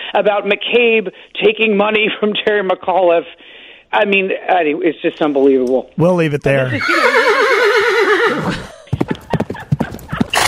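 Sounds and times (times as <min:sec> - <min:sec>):
speech: 0:00.2 - 0:07.5, 0:08.3 - 0:08.7
horse whinny: 0:06.7 - 0:08.8, 0:09.7 - 0:10.4
horse hooves clip-clopping: 0:08.9 - 0:10.4.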